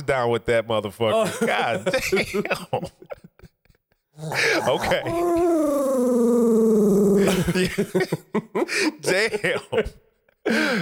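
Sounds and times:
speech: 0.1 - 3.2, 4.2 - 6.4, 7.2 - 10.7
laughter: 1.1 - 3.0
dog growling: 1.2 - 2.0, 4.2 - 8.0.

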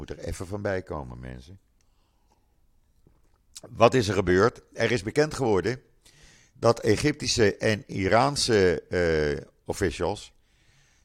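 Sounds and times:
speech: 0.1 - 1.7, 3.6 - 10.4
person sipping water: 1.8 - 3.7.

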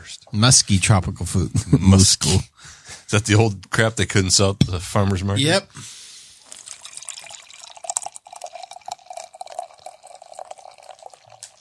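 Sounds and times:
speech: 0.3 - 6.0
wine pouring into a glass: 6.4 - 11.5.

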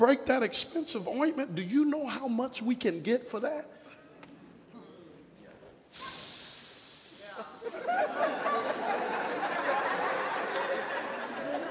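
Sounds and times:
speech: 0.0 - 3.8
voice imitating a snake hiss: 5.8 - 8.8
laughter: 7.3 - 11.6.

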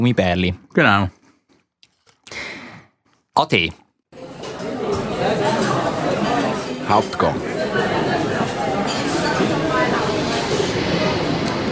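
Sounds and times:
speech: 0.0 - 1.2, 3.4 - 3.8, 6.9 - 8.1
indistinct passenger chatter: 4.2 - 11.7
commuter train rumble and rattle inside a four-seat compartment: 9.2 - 11.7.

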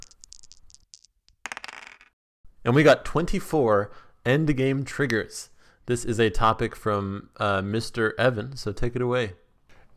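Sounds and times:
die rolled on a table during a board game: 0.0 - 2.1
speech: 2.6 - 9.4.

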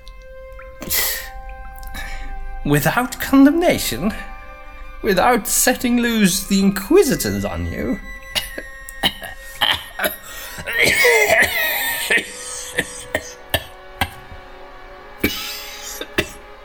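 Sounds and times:
speech: 2.6 - 4.3, 5.0 - 8.7
person in a long loud hacking coughing fit: 8.4 - 14.2, 15.2 - 16.4.

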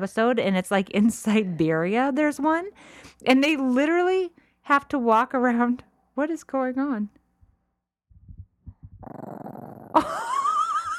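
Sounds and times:
speech: 0.0 - 7.2
dog growling: 9.0 - 10.1
laughter: 10.0 - 10.9.

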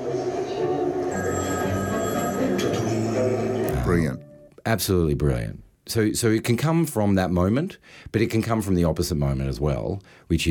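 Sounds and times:
phone ringing in a train station: 1.0 - 4.5
speech: 2.6 - 10.5.

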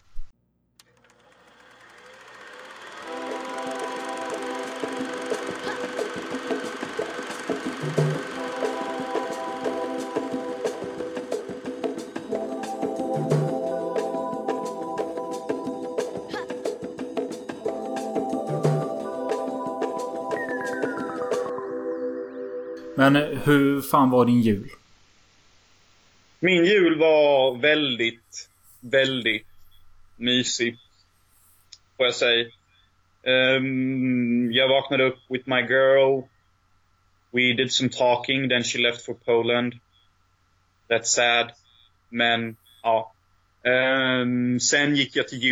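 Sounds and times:
instrumental theme music with droning tones and mechanical rhythm: 3.0 - 23.6
speech: 23.0 - 24.8, 26.4 - 29.4, 30.2 - 30.8, 32.0 - 32.6, 33.2 - 36.3, 37.3 - 39.8, 40.9 - 45.5.

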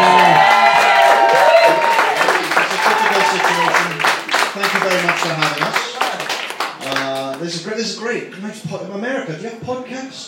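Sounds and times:
people whooping and shouting: 0.0 - 4.0
live audience cheering and applauding: 0.0 - 7.3
speech: 8.1 - 10.2.

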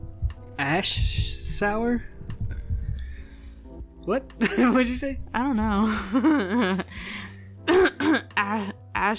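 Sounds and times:
speech: 0.6 - 2.1, 4.0 - 9.1
laughter: 4.4 - 4.9, 5.9 - 6.9
person clearing throat into a microphone: 7.7 - 8.3.

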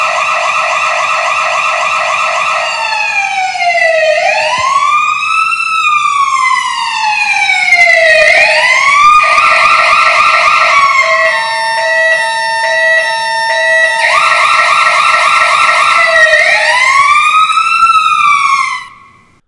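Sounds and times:
loud electronic siren wailing: 0.0 - 19.4.

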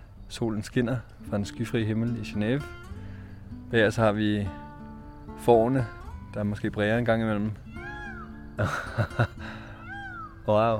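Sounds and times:
speech: 0.3 - 2.9, 3.7 - 4.6, 5.4 - 7.6, 8.6 - 9.5, 10.4 - 10.7
bird of prey soaring over a wild meadow in a botanical garden in Geneva: 7.6 - 8.6, 9.4 - 10.5
person laughing: 8.6 - 9.8.

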